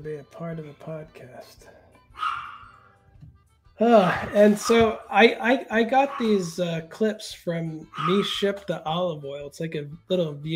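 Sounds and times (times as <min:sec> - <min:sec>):
speech: 0:00.0 - 0:02.4, 0:03.8 - 0:10.5
dog barking: 0:02.1 - 0:02.9, 0:04.5 - 0:05.0, 0:06.0 - 0:06.5, 0:07.9 - 0:08.4.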